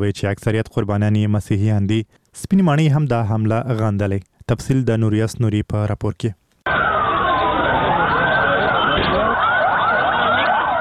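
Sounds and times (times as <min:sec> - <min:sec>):
speech: 0:00.0 - 0:06.4
ambulance sirens wailing after a bomb blast in Lahore: 0:06.7 - 0:10.8.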